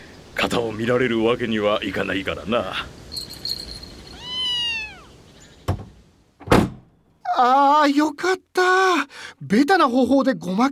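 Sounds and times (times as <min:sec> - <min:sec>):
speech: 0:00.4 - 0:03.0, 0:07.4 - 0:10.7
cat meowing: 0:04.0 - 0:05.2.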